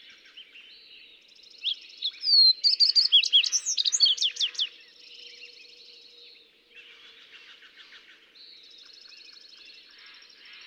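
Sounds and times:
fox sparrow singing: 0:01.7 - 0:04.8.

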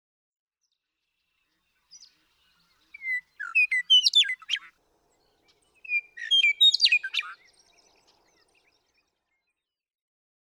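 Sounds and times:
western meadowlark singing: 0:02.9 - 0:08.5.

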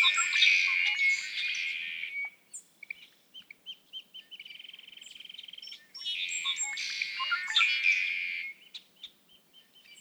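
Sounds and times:
red-winged blackbird song with trill and buzzy burst: 0:00.0 - 0:09.9.

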